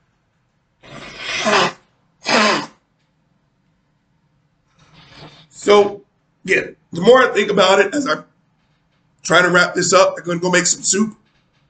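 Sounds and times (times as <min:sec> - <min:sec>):
forceful nose blowing: 0:00.8 - 0:02.8
speech: 0:05.7 - 0:08.3, 0:09.2 - 0:11.2.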